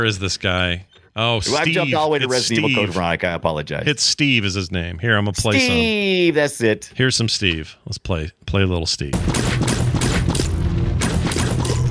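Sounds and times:
speech: 0.0 - 9.6
video game gunfire shooting zombies: 9.2 - 11.8.

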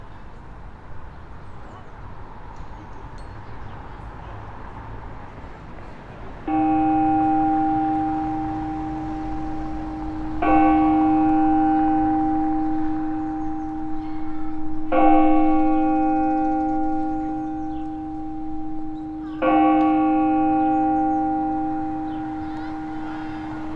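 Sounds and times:
church bell tolling: 6.4 - 23.7.

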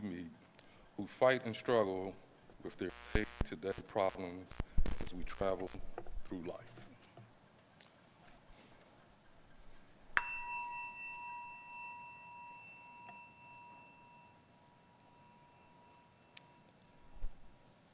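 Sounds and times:
speech: 1.0 - 6.8
bright chime struck as a weekly practice: 10.2 - 16.7.

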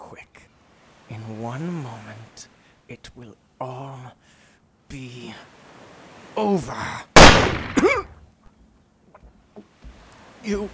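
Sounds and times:
speech: 1.3 - 5.6, 6.3 - 8.1, 10.4 - 10.7
gunshot: 7.2 - 8.0.

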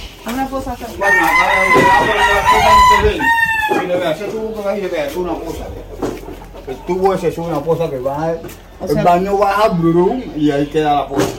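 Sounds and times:
speech: 0.2 - 5.9, 6.7 - 11.3
fighting rooster crowing: 1.0 - 4.1.

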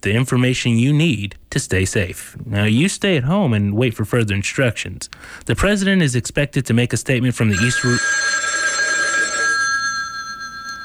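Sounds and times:
speech: 0.0 - 8.4
telephone ringing with bright electronic trill: 7.5 - 10.8.

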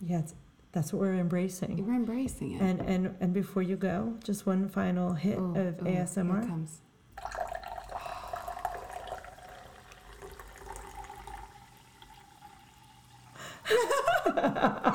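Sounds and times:
speech: 0.1 - 7.4
liquid pouring and gurgling: 7.1 - 14.0
liquid bubbling and splashing: 7.2 - 13.3
laughter: 13.7 - 14.9.

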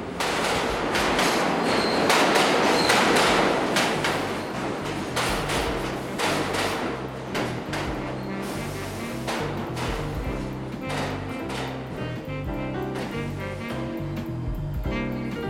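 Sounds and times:
New York City subway train rumbling on rails: 0.0 - 15.4
brief high metallic squeal of subway train: 8.0 - 9.3.

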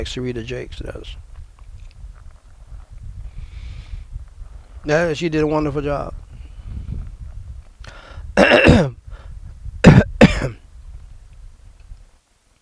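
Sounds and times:
speech: 0.0 - 1.3, 4.8 - 6.2
person clearing throat: 8.4 - 9.0, 9.8 - 10.6
person coughing in harsh rasping bursts: 8.4 - 9.0, 9.8 - 10.6.

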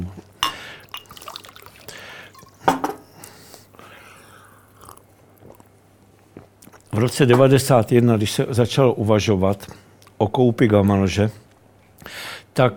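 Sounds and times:
person sipping and swallowing a drink: 0.5 - 8.0
speech: 7.0 - 11.4, 12.6 - 12.7.

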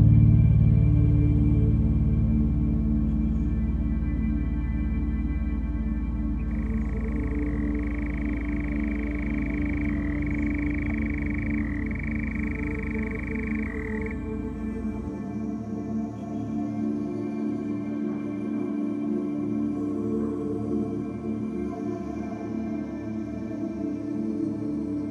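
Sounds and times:
dense bed of low humming drone: 0.0 - 25.1
nightjar churring on a summer night: 6.5 - 14.4.

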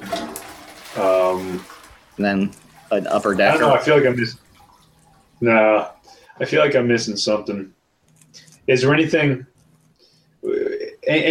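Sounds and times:
toilet flushing: 0.0 - 6.8
speech: 1.0 - 4.4, 5.4 - 7.8, 8.7 - 9.5, 11.1 - 11.3.

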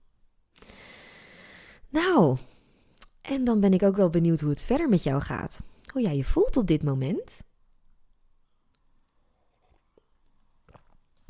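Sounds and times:
speech: 1.9 - 2.5, 3.3 - 7.5
person sipping tea: 8.5 - 11.2
mouth and swallowing noises: 9.3 - 11.2.

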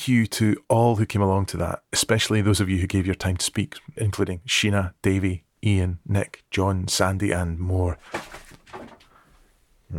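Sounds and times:
speech: 0.0 - 8.8
laptop knocked over by a kitten: 8.0 - 9.1.

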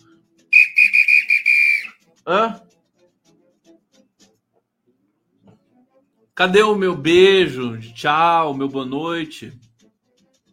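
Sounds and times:
whistle blown in short blasts and one sustained note: 0.5 - 2.0
speech: 2.3 - 2.6, 6.4 - 9.6.

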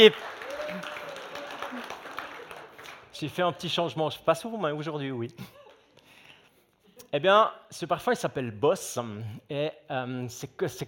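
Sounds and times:
speech: 0.0 - 0.4, 3.2 - 5.6, 7.1 - 10.8
audience clapping: 0.0 - 3.8.

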